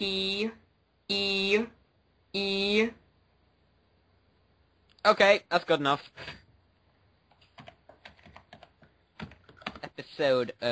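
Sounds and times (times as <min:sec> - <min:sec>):
speech: 0:00.0 - 0:03.0, 0:05.0 - 0:06.4, 0:10.0 - 0:10.6
typing on a computer keyboard: 0:07.3 - 0:09.9.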